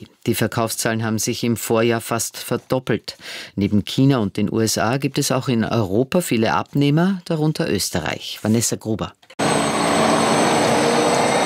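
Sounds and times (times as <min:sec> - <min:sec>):
speech: 0:00.2 - 0:09.3
electric bus driving through the streets of Vienna: 0:09.4 - 0:11.4
electric whine of an electric bus: 0:09.4 - 0:11.4.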